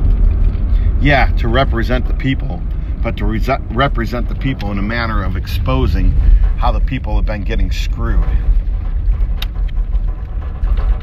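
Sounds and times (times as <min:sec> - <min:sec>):
vehicle driving down a dirt road: 0:00.0 - 0:11.0
speech: 0:01.0 - 0:08.7
loose running boards flopping around in the back: 0:03.4 - 0:11.0.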